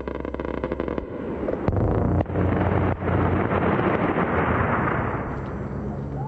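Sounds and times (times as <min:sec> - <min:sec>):
heavy gunfire and explosions from AC-130 gunship strikes near a mosque in Najaf: 0:00.0 - 0:05.9.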